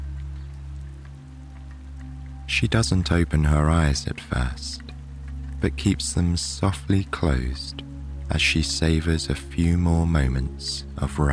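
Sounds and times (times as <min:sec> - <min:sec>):
soft rain pattering against glass: 0:00.0 - 0:11.3
steady low electrical hum: 0:00.0 - 0:11.3
speech: 0:02.5 - 0:04.9, 0:05.6 - 0:11.3.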